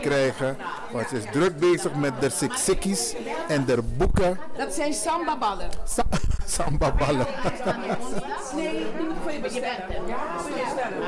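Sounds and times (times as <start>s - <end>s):
dense crowd chatter at an afternoon gathering of residents in Amsterdam Zuidoost: 0.0s - 11.0s
speech: 0.0s - 11.0s
people laughing at a gathering: 6.0s - 8.8s.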